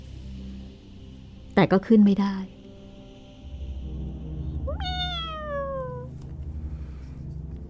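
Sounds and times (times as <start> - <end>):
speech: 1.6 - 2.6
long cat meow: 4.6 - 6.1.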